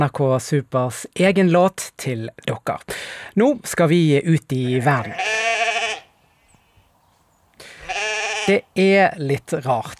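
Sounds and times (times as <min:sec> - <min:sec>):
speech: 0:00.0 - 0:05.6, 0:08.5 - 0:09.9
goats bleating: 0:04.9 - 0:06.1, 0:07.6 - 0:08.7.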